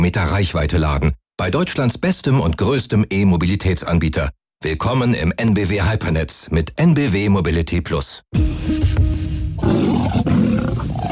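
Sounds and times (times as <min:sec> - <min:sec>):
speech: 0:00.1 - 0:10.4
lion roaring: 0:09.6 - 0:11.0.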